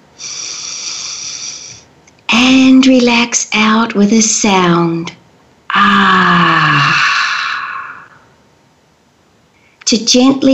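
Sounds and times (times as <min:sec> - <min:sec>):
deep breath in: 0:00.2 - 0:01.8, 0:06.8 - 0:08.2
speech: 0:02.4 - 0:05.2, 0:05.8 - 0:07.0, 0:09.9 - 0:10.5.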